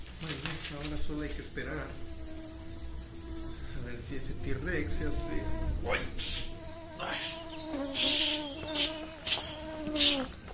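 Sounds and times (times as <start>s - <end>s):
speech: 0.2s - 2.1s, 3.9s - 6.4s
mosquito buzzing: 1.3s - 10.5s.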